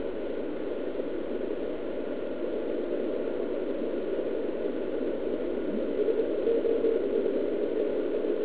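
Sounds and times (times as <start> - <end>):
radio receiver static hissing: 0.0 - 8.4
weak radio signal as thin tone pulses: 2.3 - 8.4.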